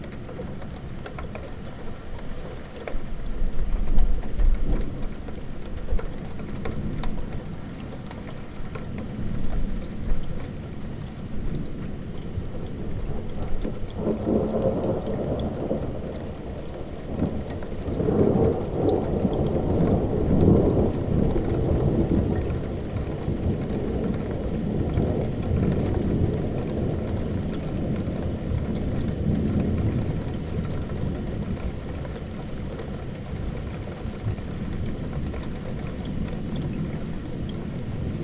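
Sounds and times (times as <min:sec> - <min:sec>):
steady dense spring rain pattering: 0:00.0 - 0:38.2
spring thunder rumbling: 0:11.5 - 0:31.9.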